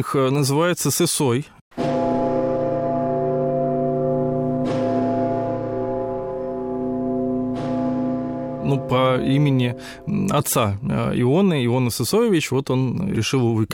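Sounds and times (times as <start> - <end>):
speech: 0.0 - 1.6, 8.7 - 13.7
heavy church bells of the Rostov Kremlin tolling by Lake Nero: 1.7 - 10.8.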